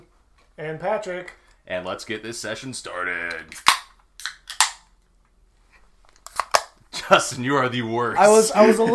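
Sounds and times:
speech: 0:00.6 - 0:03.8, 0:07.1 - 0:08.9
beer cans cracking open: 0:03.5 - 0:04.9, 0:06.2 - 0:06.8.

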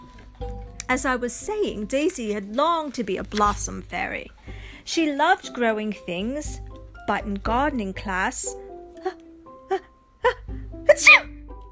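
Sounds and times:
speech: 0:00.9 - 0:09.8
fairy's sneeze in a children's story: 0:10.9 - 0:11.3.

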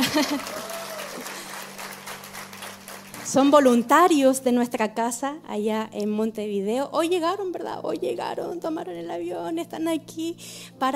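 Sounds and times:
laughter: 0:00.0 - 0:01.5
crowd clapping: 0:00.0 - 0:03.8
speech: 0:00.1 - 0:01.3, 0:03.3 - 0:10.9.

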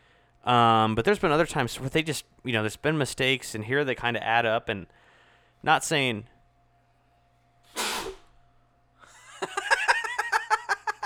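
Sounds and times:
speech: 0:00.5 - 0:05.0, 0:05.6 - 0:06.3
loud sneeze: 0:07.7 - 0:08.4
rhythmic breathy laughter: 0:09.0 - 0:11.0.

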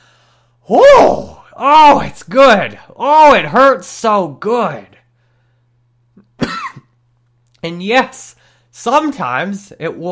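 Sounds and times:
faint steady low hum: 0:00.0 - 0:10.0
speech: 0:00.7 - 0:05.0, 0:07.6 - 0:10.0
throaty cough with breath and grunt: 0:06.2 - 0:07.0.

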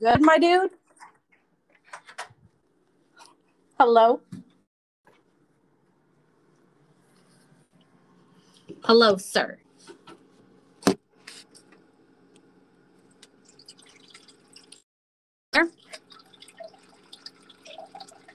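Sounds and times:
speech: 0:00.0 - 0:00.8, 0:03.8 - 0:04.4, 0:08.8 - 0:09.6, 0:15.6 - 0:15.8
liquid being poured into a glass: 0:13.3 - 0:14.8, 0:15.7 - 0:18.3.

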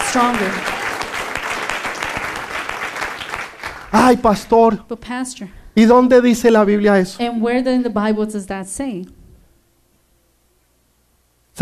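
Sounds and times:
church audience applauding: 0:00.0 - 0:04.1
speech: 0:00.1 - 0:00.7, 0:03.9 - 0:09.2.

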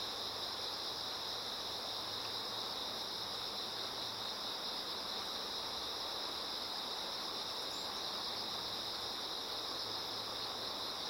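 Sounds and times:
insects singing in chorus beside a river: 0:00.0 - 0:11.0.

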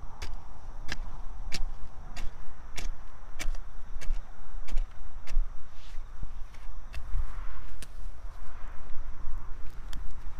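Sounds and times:
tool striking soil while planting garlic outdoors on an autumn evening: 0:00.0 - 0:08.0
thin constant insect trill: 0:00.0 - 0:10.3.

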